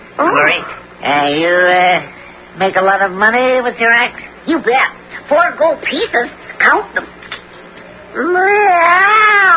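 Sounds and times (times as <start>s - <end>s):
speech: 0.2s - 7.3s, 8.1s - 9.5s
human voice imitating a cat's meow: 8.2s - 9.5s.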